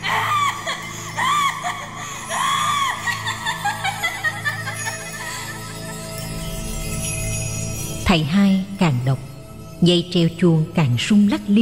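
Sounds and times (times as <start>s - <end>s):
trapped person screaming and wailing inside a closed room: 0.0s - 4.0s
laughter: 0.1s - 5.9s
speech: 8.1s - 11.6s.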